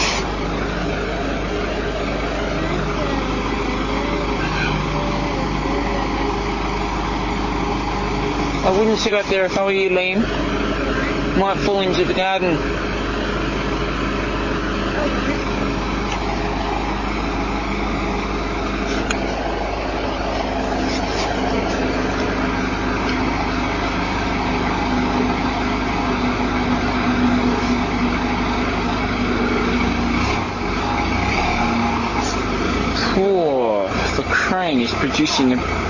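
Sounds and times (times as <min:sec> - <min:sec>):
crane's heavy diesel engine running: 0:00.0 - 0:35.8
speech: 0:08.7 - 0:10.4, 0:11.4 - 0:12.8, 0:35.2 - 0:35.8.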